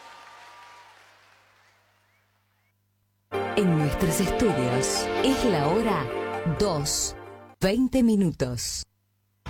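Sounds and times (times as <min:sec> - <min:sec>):
applause: 0:00.0 - 0:02.5
speech: 0:03.6 - 0:08.9.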